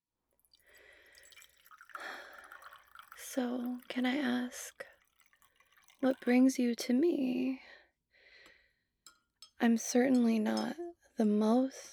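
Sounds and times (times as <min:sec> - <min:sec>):
liquid poured into a cup: 0:00.4 - 0:06.6
speech: 0:03.4 - 0:04.9, 0:06.0 - 0:07.8, 0:09.6 - 0:11.9.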